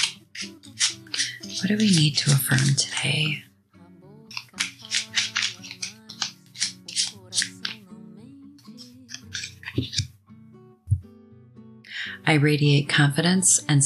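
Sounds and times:
deck of cards shuffling with crisp papery riffles and slaps: 0:00.0 - 0:03.4, 0:04.3 - 0:07.8, 0:08.8 - 0:10.1
soft sustained music: 0:00.0 - 0:13.8
speech: 0:00.4 - 0:03.5, 0:12.3 - 0:13.8.

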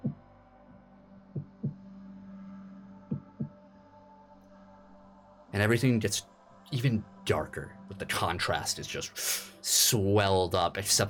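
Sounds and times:
deep heartbeat thumping in lub-dub pairs: 0:00.0 - 0:00.2, 0:01.4 - 0:01.8, 0:03.1 - 0:03.6
speech: 0:05.6 - 0:11.0.

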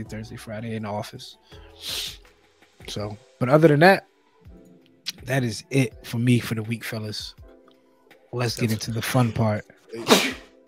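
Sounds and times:
speech: 0:00.0 - 0:02.2, 0:02.8 - 0:04.1, 0:05.2 - 0:07.4, 0:08.3 - 0:10.3
sneeze: 0:09.9 - 0:10.6.

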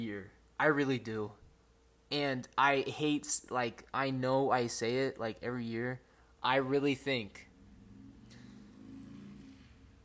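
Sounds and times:
speech: 0:00.0 - 0:01.4, 0:02.1 - 0:07.5
motorcycle engine rumbling and revving outside: 0:07.4 - 0:10.0.

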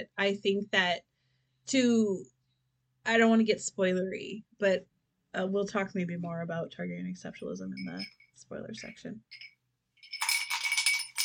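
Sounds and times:
speech: 0:00.0 - 0:01.1, 0:01.7 - 0:02.3, 0:03.0 - 0:09.5
empty glass clinking and rattling: 0:07.8 - 0:08.4, 0:09.3 - 0:11.2.

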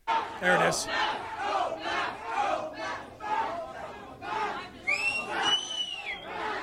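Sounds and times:
large crowd of high school students chanting at a walkout in Canada: 0:00.0 - 0:06.6
speech: 0:00.4 - 0:02.0
shrill whistles or screams: 0:04.8 - 0:06.6.

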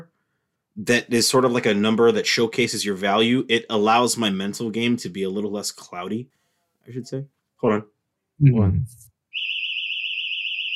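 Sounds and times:
speech: 0:00.8 - 0:09.1
house alarm blaring with high-pitched electronic tone: 0:09.3 - 0:10.7.

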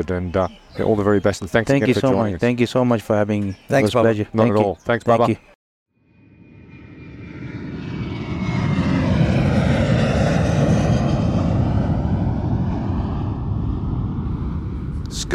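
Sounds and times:
speech: 0:00.0 - 0:05.5
airplane roaring overhead at Sky Plaza Road in Hong Kong: 0:06.0 - 0:15.3.

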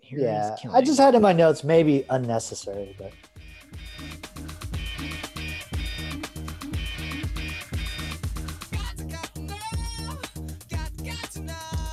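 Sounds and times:
speech: 0:00.1 - 0:03.9
song with driving drum beat and heavy bass: 0:01.1 - 0:11.9.

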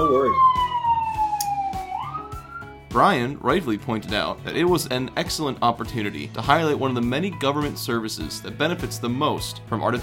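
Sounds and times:
speech: 0:00.0 - 0:00.6, 0:02.9 - 0:10.0
loud ambulance siren wailing as the vehicle passes: 0:00.0 - 0:02.8.

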